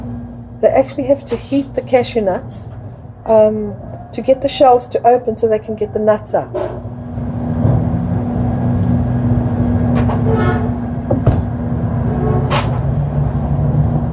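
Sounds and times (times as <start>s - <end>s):
heavy garbage trucks rumbling and idling outside a warehouse at night: 0.0s - 14.1s
speech: 0.6s - 6.8s
garbage truck air brakes hissing: 12.9s - 13.8s.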